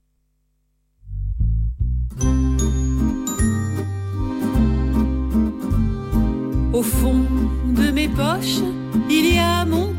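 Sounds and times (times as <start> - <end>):
low deliberate bass notes: 1.0 - 9.9
fuller instrumental backing in mid-tempo rhythm: 1.1 - 9.9
bright chiming bell-like tones: 2.2 - 4.5
speech: 6.8 - 9.9.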